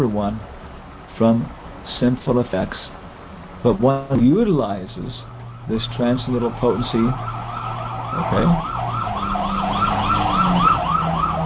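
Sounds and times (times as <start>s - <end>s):
speech: 0.0s - 0.6s, 1.2s - 3.0s, 3.6s - 7.4s, 8.1s - 8.9s
fire truck low engine rumble: 0.0s - 11.4s
fire truck siren in a fast repeating yelp: 5.1s - 11.4s.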